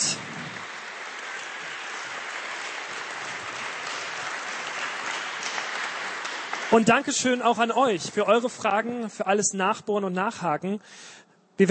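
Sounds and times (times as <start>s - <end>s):
audience applause at a church gathering: 0.0s - 8.8s
speech: 6.7s - 11.6s.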